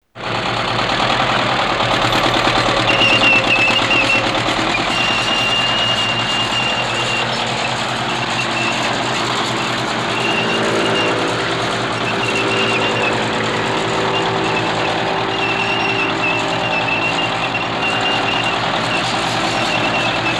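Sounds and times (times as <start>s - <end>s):
Sherman tank: 0.0s - 20.3s.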